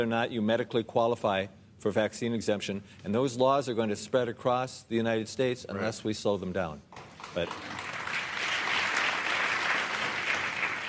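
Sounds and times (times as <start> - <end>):
speech: 0.0 - 7.8
crowd applauding: 7.0 - 10.8.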